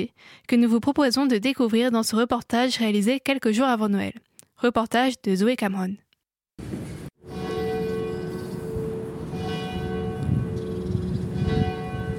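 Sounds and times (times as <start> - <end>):
speech: 0.0 - 6.0
church bells ringing the hour: 7.2 - 12.1.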